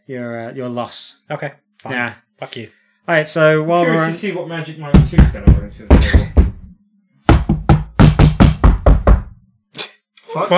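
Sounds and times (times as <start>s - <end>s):
speech: 0.1s - 6.4s, 10.3s - 10.5s
loud sharp knocks: 4.9s - 6.7s, 7.3s - 9.4s.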